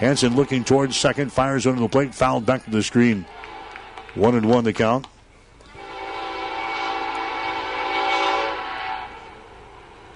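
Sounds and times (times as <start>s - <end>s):
speech: 0.0s - 3.4s, 4.2s - 5.1s
train horn blast near a college baseball field: 5.8s - 9.9s.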